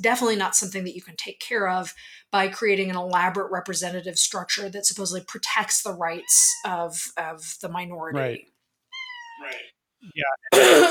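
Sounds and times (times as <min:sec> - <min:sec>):
speech: 0:00.0 - 0:08.5, 0:09.4 - 0:10.8
cat meowing: 0:06.1 - 0:06.9, 0:08.9 - 0:09.7
throat clearing: 0:10.2 - 0:10.8
person coughing harshly: 0:10.5 - 0:10.8.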